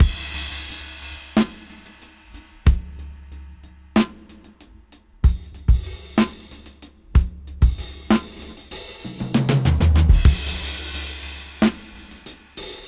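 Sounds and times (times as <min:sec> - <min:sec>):
slow half-time beat at 94 BPM: 0:00.0 - 0:12.8.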